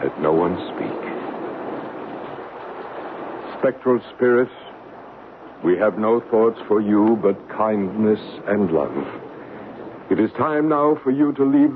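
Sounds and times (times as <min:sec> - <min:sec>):
speech: 0:00.0 - 0:01.0, 0:03.6 - 0:04.7, 0:05.6 - 0:09.2, 0:10.1 - 0:11.7
rain falling from a December thunder shower: 0:00.0 - 0:11.7.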